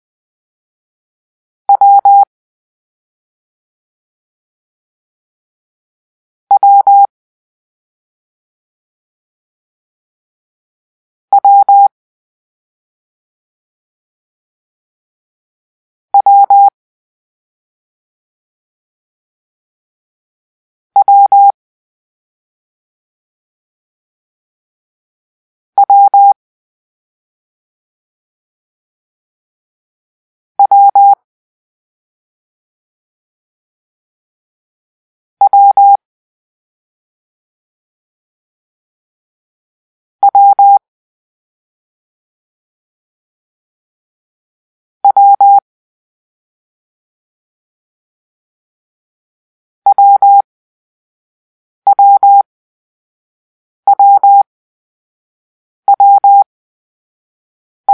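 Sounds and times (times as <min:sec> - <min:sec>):
morse code for the letter W: 0:01.7 - 0:02.3, 0:06.5 - 0:07.1, 0:11.3 - 0:11.9, 0:16.2 - 0:16.7, 0:21.0 - 0:21.5, 0:25.8 - 0:26.4, 0:30.6 - 0:31.2, 0:35.4 - 0:36.0, 0:40.2 - 0:40.8, 0:45.0 - 0:45.6, 0:49.9 - 0:50.4, 0:51.9 - 0:52.4, 0:53.9 - 0:54.5, 0:55.9 - 0:56.5.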